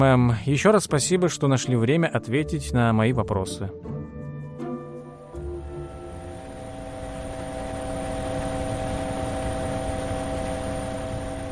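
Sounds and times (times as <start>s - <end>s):
speech: 0.0s - 4.0s
helicopter engine and rotors droning while landing at a military facility in New Mexico: 5.4s - 11.5s.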